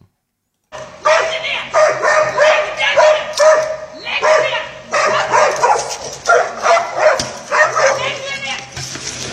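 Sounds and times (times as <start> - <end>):
raised human voices: 0.8 - 6.0, 6.6 - 8.7
dog barking loudly in agitated bursts: 0.8 - 8.5.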